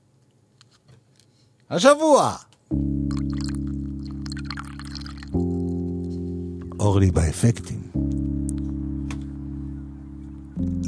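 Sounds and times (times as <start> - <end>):
speech: 1.7 - 2.9, 6.8 - 8.2
loud steady sustained chord: 2.7 - 10.8
water pouring with a splashy trickling hiss: 3.1 - 5.5.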